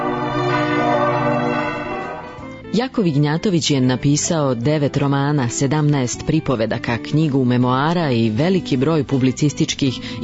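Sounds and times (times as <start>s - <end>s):
church bells ringing with echo among mountains: 0.0s - 2.6s
speech: 2.8s - 10.2s.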